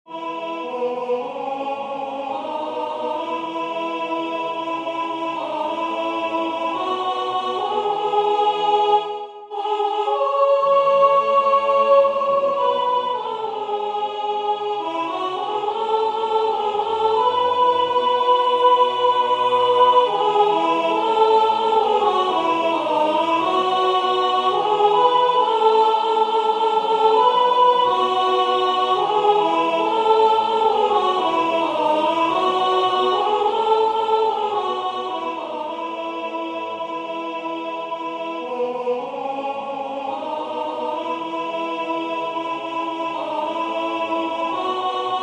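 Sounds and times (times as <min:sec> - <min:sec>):
soprano singing: 0:00.1 - 0:45.2.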